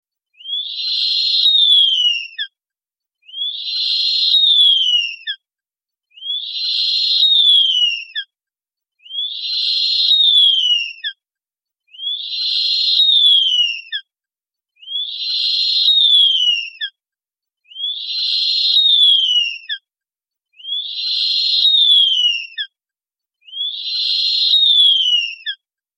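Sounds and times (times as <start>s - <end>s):
juvenile Blakistons fish owl: 0.4s - 2.5s, 3.2s - 5.4s, 6.1s - 8.3s, 9.0s - 11.2s, 11.9s - 14.1s, 14.8s - 17.0s, 17.7s - 19.8s, 20.6s - 22.7s, 23.4s - 25.6s.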